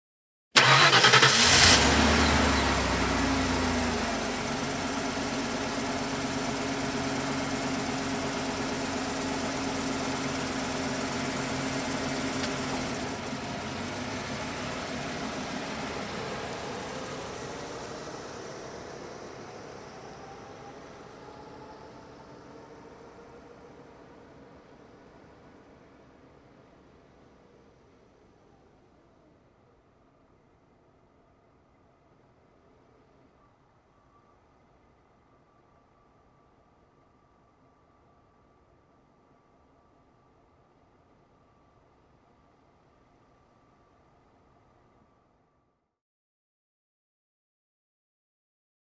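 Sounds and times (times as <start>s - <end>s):
SUV engine ignition: 0.6s - 25.9s.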